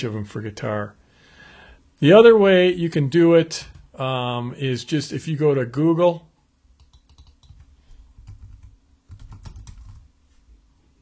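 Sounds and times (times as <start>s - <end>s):
speech: 0.0s - 1.0s, 2.0s - 6.3s
fingers typing on a computer keyboard: 6.8s - 10.1s.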